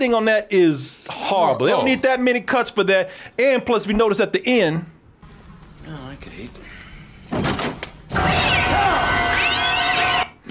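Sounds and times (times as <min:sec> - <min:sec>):
speech: 0:00.0 - 0:05.0
cat meowing: 0:08.2 - 0:10.3.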